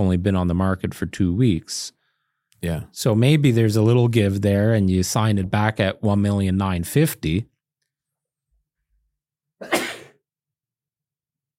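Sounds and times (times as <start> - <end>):
speech: 0.0 - 2.0, 2.6 - 7.5
person sneezing: 9.6 - 10.2.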